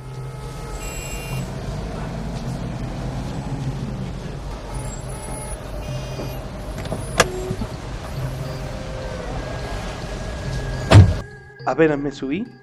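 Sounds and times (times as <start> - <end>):
Chevrolet car engine idling: 0.0 - 10.1
car door shutting with a loud thump: 6.1 - 7.8, 10.9 - 11.2
speech: 11.7 - 12.6.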